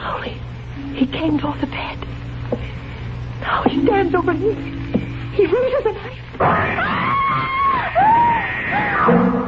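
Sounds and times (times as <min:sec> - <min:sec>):
speech: 0:00.3 - 0:02.8, 0:03.4 - 0:04.8, 0:05.4 - 0:09.4
person screaming in terror: 0:06.6 - 0:09.1.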